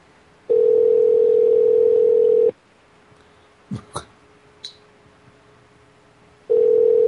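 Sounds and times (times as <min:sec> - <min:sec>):
emergency phone line ringing through the earpiece: 0:00.5 - 0:02.5, 0:06.5 - 0:07.0.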